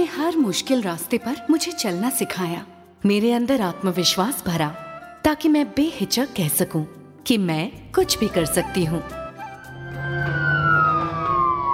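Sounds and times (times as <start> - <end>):
speech: 0.0 - 9.2
ambulance siren wailing: 8.4 - 11.7.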